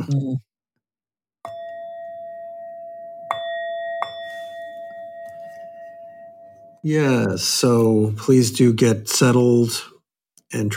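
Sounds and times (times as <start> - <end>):
speech: 0.1 - 0.5, 6.8 - 9.9, 10.5 - 10.7
Tibetan bell struck to begin a guided practice: 1.5 - 6.8.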